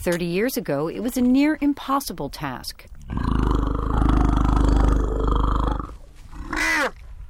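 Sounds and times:
speech: 0:00.0 - 0:03.4
orphaned infant African elephant roaring at a nursery in Kenya: 0:03.0 - 0:06.9.

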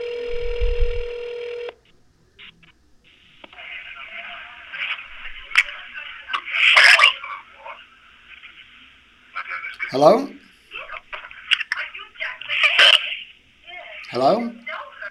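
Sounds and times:
hissy phone-line connection with scattered clicks: 0:00.0 - 0:01.8
telephone tone: 0:00.0 - 0:01.8
faint noises: 0:01.7 - 0:15.0
speech: 0:09.9 - 0:10.4, 0:14.2 - 0:14.6.

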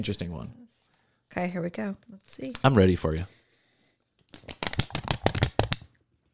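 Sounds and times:
speech: 0:00.0 - 0:00.6, 0:01.3 - 0:03.4
crisp paper snapping and crackling as it is handled: 0:04.3 - 0:05.9.

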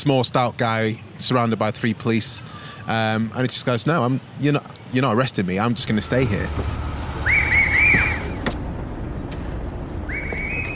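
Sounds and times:
speech: 0:00.0 - 0:06.8
steady low rumble of street traffic: 0:00.0 - 0:10.7
shrill whistles blown as a warning signal: 0:07.2 - 0:08.4, 0:10.0 - 0:10.7.

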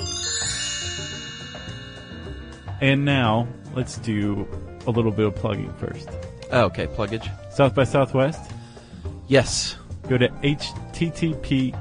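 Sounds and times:
short bright listener-mail chime jingle: 0:00.0 - 0:04.9
speech: 0:02.8 - 0:08.5, 0:09.3 - 0:11.7.

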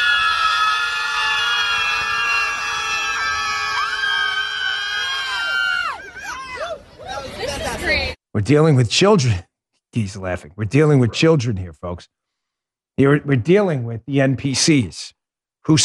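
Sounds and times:
protest crowd screaming at the sky: 0:00.0 - 0:07.2
speech: 0:08.4 - 0:12.2, 0:13.0 - 0:15.8.

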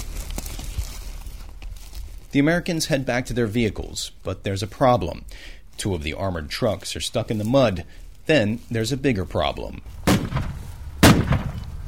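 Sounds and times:
quiet noise: 0:00.0 - 0:11.8
speech: 0:02.3 - 0:10.0
single gunshot fired at coalition troops: 0:10.1 - 0:11.7.

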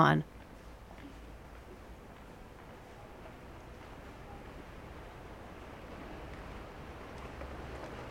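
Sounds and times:
speech: 0:00.0 - 0:00.3
vaporetto water bus engine rumble on canal: 0:00.2 - 0:08.0
steady splashing wash of water bus on canal: 0:03.2 - 0:08.0.

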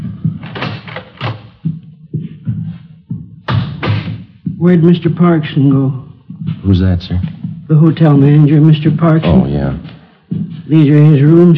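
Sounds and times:
door opening and closing: 0:00.3 - 0:01.6
speech: 0:04.6 - 0:06.0, 0:06.6 - 0:09.9, 0:10.7 - 0:11.5.

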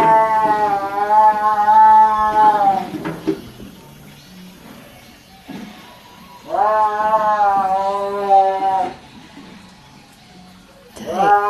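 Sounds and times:
tiger yowling: 0:00.0 - 0:03.0, 0:05.9 - 0:09.1, 0:10.9 - 0:11.4.

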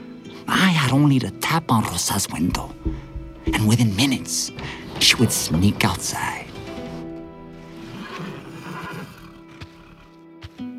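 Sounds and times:
speech: 0:00.4 - 0:06.4
hooves shifting on a hard floor: 0:02.5 - 0:06.2
horse whinnying in a stable: 0:07.5 - 0:10.1.

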